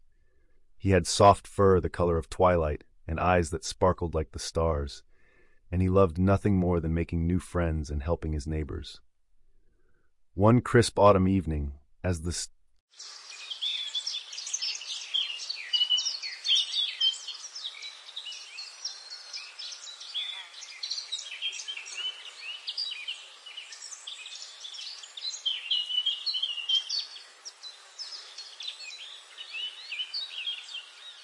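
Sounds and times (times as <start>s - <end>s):
speech: 0.8s - 5.1s, 5.7s - 9.1s, 10.4s - 13.2s
night birds calling in a forest: 13.0s - 31.2s.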